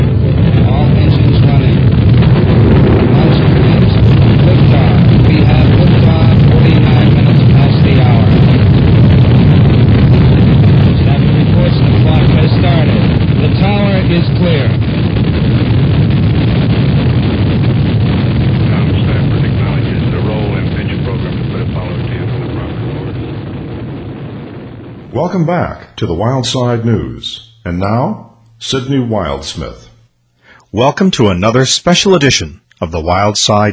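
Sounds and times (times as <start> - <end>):
rocket engines roaring at launch: 0.0 - 33.7
speech: 25.4 - 29.8, 30.7 - 33.7.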